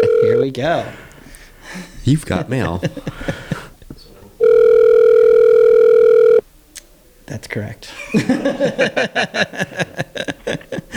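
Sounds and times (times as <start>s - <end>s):
steady loud electronic telephone tone as a call is dialed out: 0.0s - 0.5s, 4.4s - 6.4s
laughter: 0.0s - 4.2s, 7.9s - 10.9s
speech: 0.4s - 1.0s, 1.7s - 3.6s, 7.4s - 10.3s.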